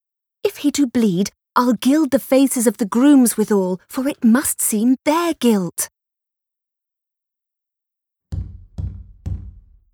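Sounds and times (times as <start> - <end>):
speech: 0.6 - 6.0
heavy knocks on a door: 8.3 - 9.9.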